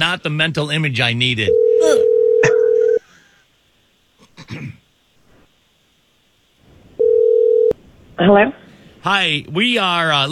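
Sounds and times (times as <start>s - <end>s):
speech: 0.1s - 2.6s, 4.5s - 4.8s, 8.2s - 10.3s
electronic telephone ringback tone: 1.5s - 3.0s, 7.0s - 7.8s.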